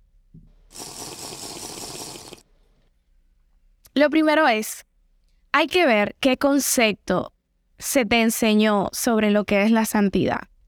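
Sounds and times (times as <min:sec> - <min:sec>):
person drinking water: 0:00.7 - 0:02.9
speech: 0:04.0 - 0:04.9, 0:05.5 - 0:10.5.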